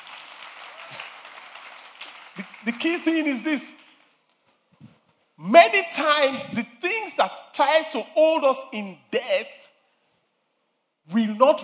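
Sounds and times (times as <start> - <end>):
audience clapping: 0.0 - 4.2
speech: 2.6 - 3.8, 5.5 - 9.7, 11.1 - 11.6.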